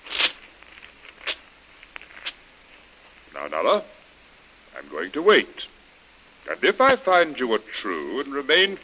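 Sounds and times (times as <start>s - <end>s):
written paper document being torn up: 0.0s - 1.4s
faint crinkling of paper: 0.0s - 3.3s
speech: 3.5s - 4.0s, 4.8s - 5.7s, 6.5s - 8.8s.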